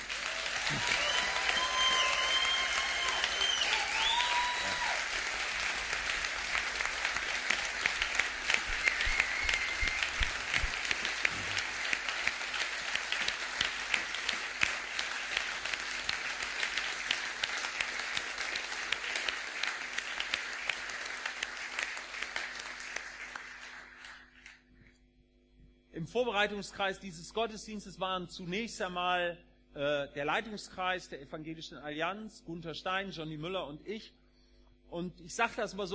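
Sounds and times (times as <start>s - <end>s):
large audience applauding during a church service: 0.0s - 24.6s
speech: 0.7s - 1.0s, 26.1s - 34.2s, 34.9s - 35.9s.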